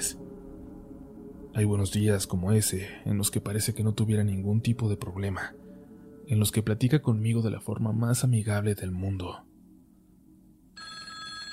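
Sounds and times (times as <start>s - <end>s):
speech: 0.0s - 0.3s, 1.6s - 5.6s, 6.3s - 9.5s
landline telephone bell ringing: 10.8s - 11.5s.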